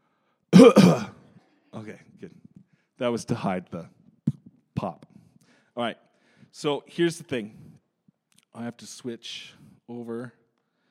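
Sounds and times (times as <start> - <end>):
speech: 0.6 - 1.0, 3.0 - 4.0, 4.8 - 5.1, 5.8 - 6.0, 6.6 - 7.6, 8.6 - 10.4
people clearing throats: 0.6 - 1.3
people coughing: 0.6 - 1.3.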